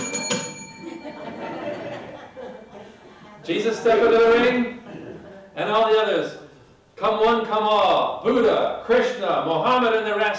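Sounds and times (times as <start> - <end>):
bell struck with a bright metallic ring: 0.0 - 2.8
light chuckling: 0.8 - 3.4
speech: 3.5 - 4.8, 5.6 - 6.4, 7.0 - 10.3.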